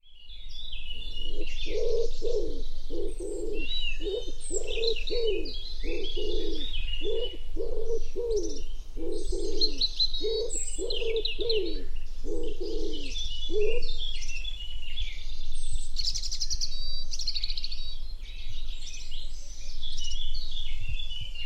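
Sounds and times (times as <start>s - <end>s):
chorus of chirping songbirds: 0.0s - 21.4s
Common wood pigeon cooing: 1.3s - 14.0s.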